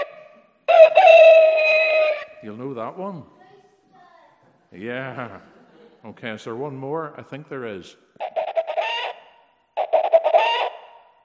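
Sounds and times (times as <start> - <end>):
chickens clucking and squawking: 0.0 - 2.4, 8.2 - 11.0
speech: 2.4 - 3.4, 4.7 - 8.0
laughter: 4.8 - 6.8.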